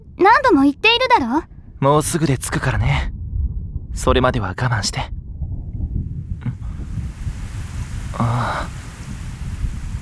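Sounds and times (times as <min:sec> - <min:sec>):
low gusty rumbling: 0:00.0 - 0:10.0
speech: 0:00.5 - 0:03.2, 0:04.0 - 0:05.2
rain falling: 0:06.4 - 0:10.0.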